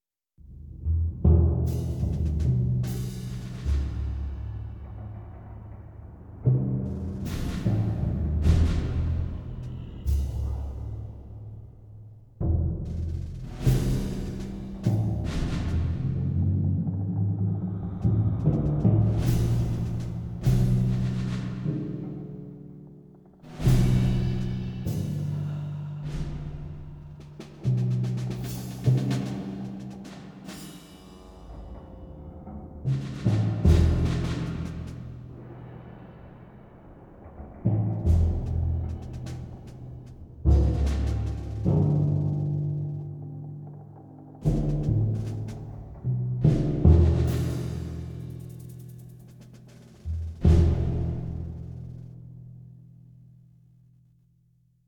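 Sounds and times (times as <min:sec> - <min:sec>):
drums: 0:00.4 - 0:52.9.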